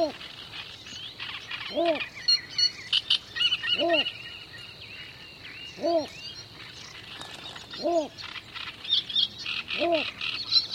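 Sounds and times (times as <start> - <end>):
birds chirping and twittering: 0.0 - 10.7
bittern hooting: 1.6 - 2.1, 3.4 - 4.2, 5.8 - 6.2, 7.7 - 8.2, 9.7 - 10.2.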